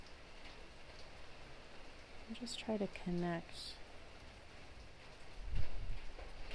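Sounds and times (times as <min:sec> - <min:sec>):
steady rain falling on a surface: 0:00.0 - 0:06.5
speech: 0:02.3 - 0:03.8.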